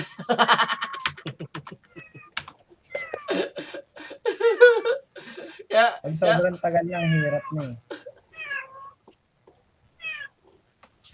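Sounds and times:
laughter: 0:00.0 - 0:06.6, 0:07.6 - 0:08.2
speech: 0:06.0 - 0:07.8
cat meowing: 0:07.0 - 0:07.7, 0:08.3 - 0:09.0, 0:10.0 - 0:10.4.

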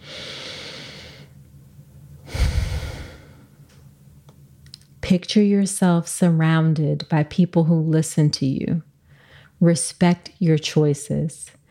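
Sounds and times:
deep breath: 0:00.0 - 0:01.4, 0:02.2 - 0:03.5, 0:09.0 - 0:09.6
speech: 0:05.1 - 0:08.9, 0:09.6 - 0:11.6.

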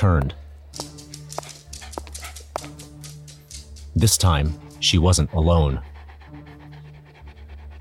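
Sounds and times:
speech: 0:00.0 - 0:00.4, 0:04.0 - 0:05.9
large black long-haired dog panting heavily: 0:01.1 - 0:03.9, 0:04.6 - 0:07.7.

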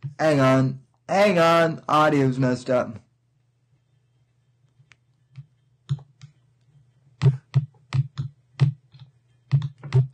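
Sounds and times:
faint low hum: 0:00.0 - 0:10.1
speech: 0:00.2 - 0:03.0
computer keyboard keys clicking: 0:07.2 - 0:10.1.

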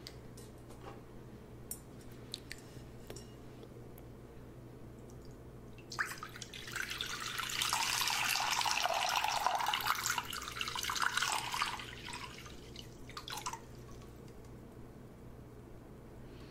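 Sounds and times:
warm water pouring and splashing: 0:05.9 - 0:13.6.

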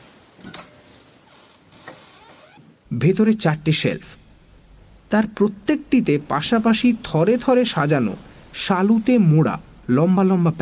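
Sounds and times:
quiet hiss: 0:00.0 - 0:10.6
bunch of keys jangling unlocking a wardrobe: 0:00.4 - 0:01.4
speech: 0:03.0 - 0:04.2, 0:05.1 - 0:10.6.

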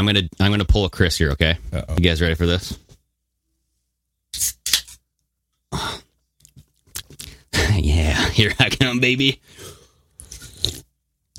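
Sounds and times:
speech: 0:00.0 - 0:02.8, 0:04.3 - 0:04.6, 0:07.8 - 0:09.5
person slurping a drink: 0:10.2 - 0:10.9.

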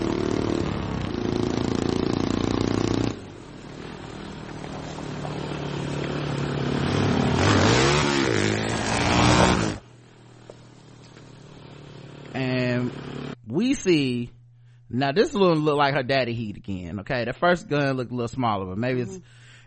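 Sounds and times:
motorcycle engine revving as a man rides off: 0:00.0 - 0:13.4
speech: 0:15.0 - 0:19.4.

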